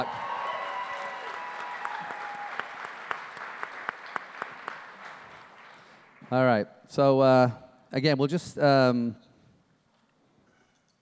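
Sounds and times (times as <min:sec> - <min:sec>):
audience applauding: 0:00.0 - 0:06.3
speech: 0:06.3 - 0:09.2.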